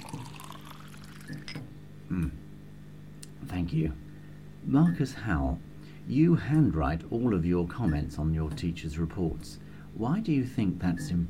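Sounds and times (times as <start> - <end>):
water poured into a glass in an office: 0.0 - 1.6
speech: 3.7 - 11.2.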